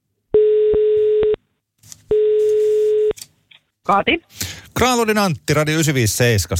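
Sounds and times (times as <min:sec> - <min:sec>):
electronic telephone ringback tones of an outgoing call: 0:00.4 - 0:01.4, 0:02.1 - 0:03.1
speech: 0:03.9 - 0:06.5.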